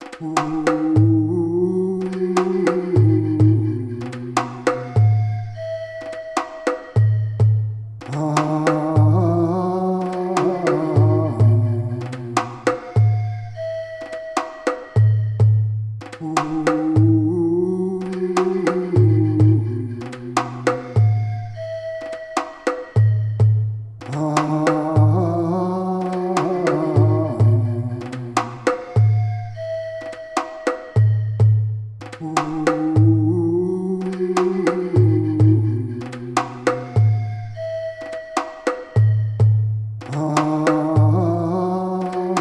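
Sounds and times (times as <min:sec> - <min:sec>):
djembe rhythm: 0:00.0 - 0:42.3.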